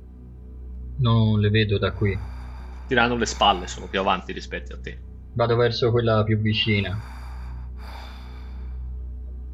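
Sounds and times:
low steady hum: 0:00.0 - 0:09.5
speech: 0:01.0 - 0:02.3, 0:02.9 - 0:07.2
heavy ragged panting breaths with gasping intake: 0:01.5 - 0:05.6, 0:06.3 - 0:09.5.

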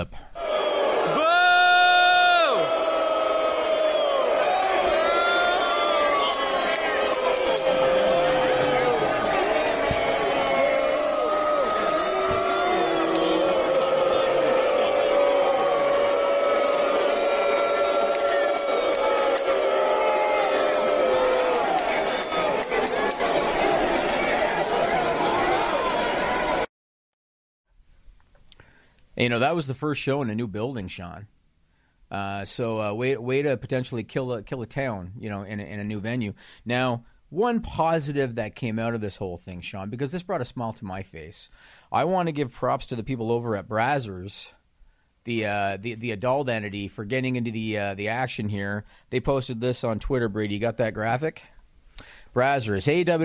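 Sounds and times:
speech: 0:00.0 - 0:00.2, 0:29.2 - 0:31.4, 0:32.1 - 0:44.6, 0:45.2 - 0:53.2
large crowd roaring at a live show: 0:00.4 - 0:26.7.

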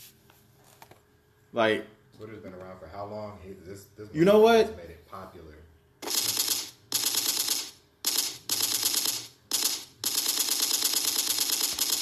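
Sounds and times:
speech: 0:01.5 - 0:05.7
automatic gunfire sound effects: 0:06.0 - 0:11.9.

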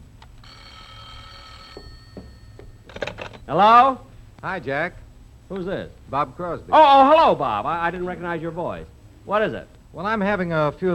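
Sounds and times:
low hum: 0:00.0 - 0:10.9
telephone bell ringing: 0:00.4 - 0:02.9
speech: 0:03.5 - 0:10.9.

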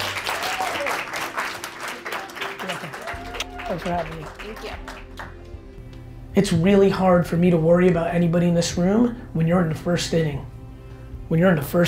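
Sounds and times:
crowd applauding: 0:00.0 - 0:05.6
speech: 0:03.7 - 0:05.0, 0:06.4 - 0:10.5, 0:11.3 - 0:11.8.

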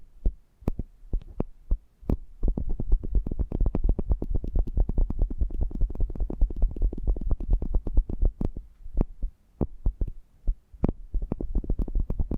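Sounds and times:
eardrum massage taps and rubbing thuds: 0:00.2 - 0:10.2, 0:10.8 - 0:12.3.

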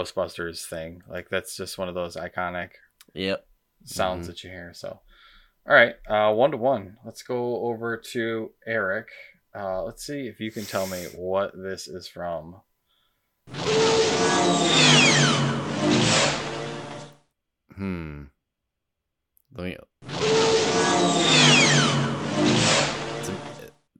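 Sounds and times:
speech: 0:00.0 - 0:12.7, 0:17.8 - 0:18.3, 0:19.5 - 0:19.9
vocal bursts: 0:10.5 - 0:11.2
sci-fi speeder bike roaring whooshes with falling whine: 0:13.5 - 0:17.1, 0:20.1 - 0:23.6.

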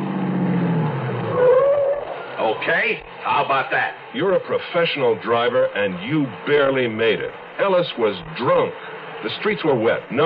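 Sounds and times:
car engine droning: 0:00.0 - 0:10.2
tire squeal as a car pulls to a stop: 0:01.1 - 0:02.9
speech: 0:02.6 - 0:10.2.

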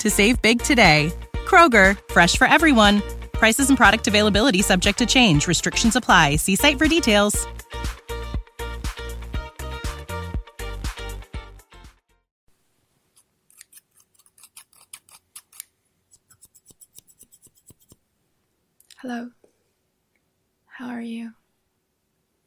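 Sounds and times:
speech: 0:00.0 - 0:07.6, 0:19.1 - 0:19.4, 0:20.8 - 0:21.4
scissors snipping and cutting paper: 0:13.2 - 0:18.0.

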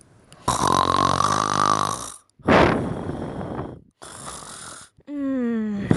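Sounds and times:
loud heavy rasping snoring: 0:00.4 - 0:05.0.

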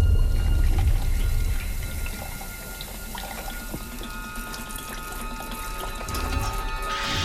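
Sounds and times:
faint ringing tones: 0:00.2 - 0:07.0
liquid pouring into a sink: 0:00.3 - 0:07.0.

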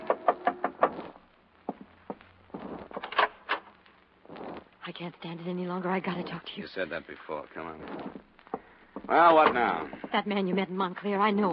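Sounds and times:
dull thumps and knocks: 0:00.0 - 0:03.4, 0:07.8 - 0:10.8
speech: 0:00.1 - 0:00.3, 0:04.9 - 0:08.3, 0:09.1 - 0:11.5.

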